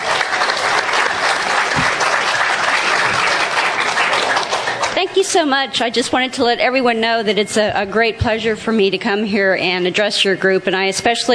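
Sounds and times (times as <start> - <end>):
audience applause welcoming a guest presenter: 0.0 - 5.5
speech: 5.1 - 11.3.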